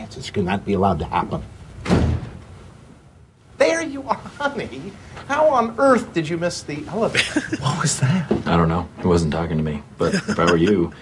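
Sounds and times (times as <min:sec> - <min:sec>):
speech: 0:00.2 - 0:02.0, 0:04.1 - 0:11.0
door swinging open with a single solid thud: 0:01.8 - 0:02.4
laughter: 0:10.0 - 0:10.9.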